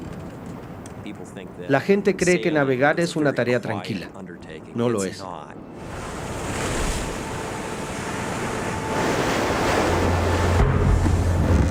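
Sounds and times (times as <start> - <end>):
speech: 1.0 - 6.0
huge waves crashing against a sailboat hull in bad weather at night: 5.8 - 11.6.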